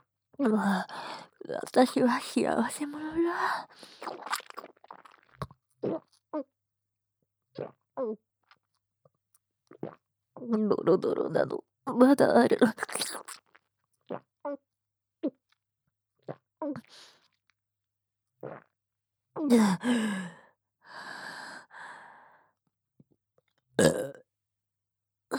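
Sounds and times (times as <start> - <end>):
speech: 0.4 - 4.7, 5.8 - 6.5, 7.6 - 8.2, 9.8 - 13.4, 14.1 - 14.6, 16.6 - 17.1, 19.4 - 20.4, 23.8 - 24.2
small gulping: 1.4 - 6.1, 9.8 - 13.4, 23.8 - 24.2
breathy sighs: 19.6 - 22.3
person burping loudly: 23.8 - 24.2.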